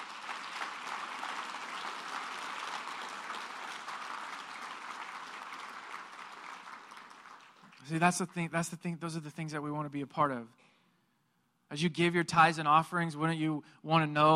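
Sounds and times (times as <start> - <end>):
audience applause: 0.0 - 7.9
speech: 7.9 - 10.6, 11.7 - 14.3.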